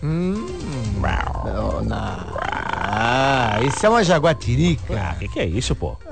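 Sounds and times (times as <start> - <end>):
human voice imitating an African lion's roar: 0.0 - 3.8
speech: 3.6 - 6.1.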